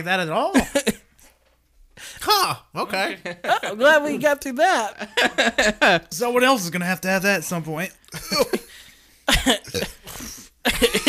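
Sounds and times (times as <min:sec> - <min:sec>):
speech: 0:00.0 - 0:00.9, 0:02.2 - 0:08.7, 0:09.3 - 0:11.0
person burping after eating: 0:09.3 - 0:11.0.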